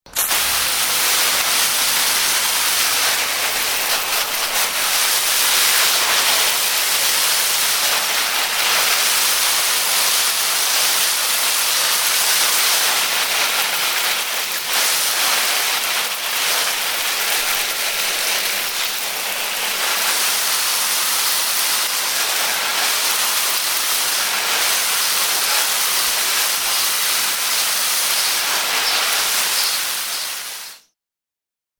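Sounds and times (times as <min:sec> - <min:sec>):
water sprinkler on a hose spraying: 0:00.1 - 0:30.9.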